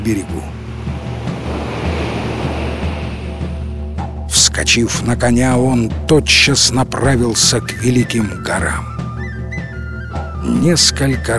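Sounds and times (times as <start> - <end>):
speech: 0.0 - 0.5, 4.6 - 9.0, 10.4 - 11.3
high sea waves churning and closing: 0.0 - 4.5.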